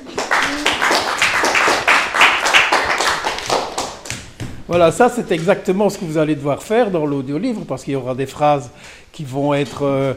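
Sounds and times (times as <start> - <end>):
group of people clapping in applause: 0.0 - 4.6
speech: 4.7 - 10.1.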